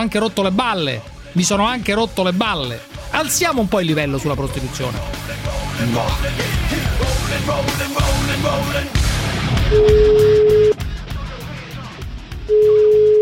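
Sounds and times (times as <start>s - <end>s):
speech: 0.0s - 9.0s, 9.7s - 10.4s
telephone tone while a call is being placed: 9.7s - 10.8s, 12.5s - 13.2s.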